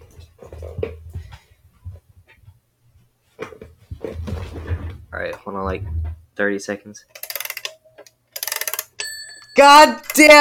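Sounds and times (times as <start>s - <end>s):
speech: 5.2s - 7.2s, 9.6s - 10.3s
clock ticking: 8.4s - 10.3s.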